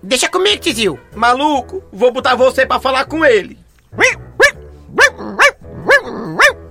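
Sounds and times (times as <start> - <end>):
speech: 0.0 - 4.2
dog barking over a phone line: 4.0 - 6.6.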